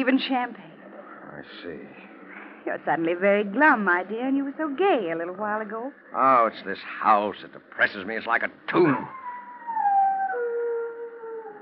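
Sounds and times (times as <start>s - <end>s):
speech: 0.0s - 0.7s, 1.4s - 9.2s
dog howling: 9.0s - 11.5s.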